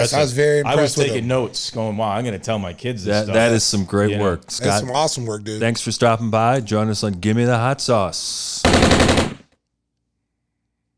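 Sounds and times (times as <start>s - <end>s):
speech: 0.0s - 9.3s
automatic rifle gunfire until it runs out of bullets: 8.7s - 9.4s.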